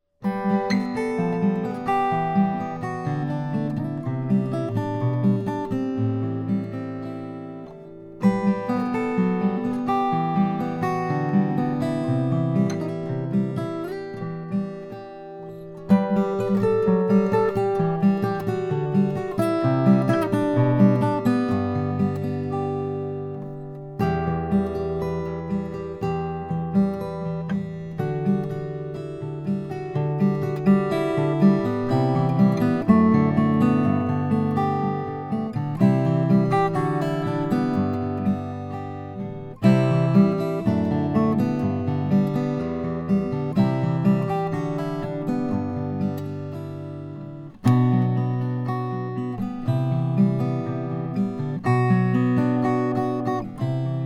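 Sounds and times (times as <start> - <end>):
Bourgeois Custom 0 Madagascar rosewood guitar: 0.0 - 54.0.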